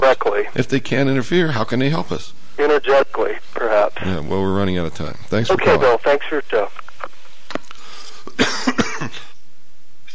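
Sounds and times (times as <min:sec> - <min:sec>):
speech: 0:00.2 - 0:06.8
person coughing harshly: 0:08.3 - 0:09.3.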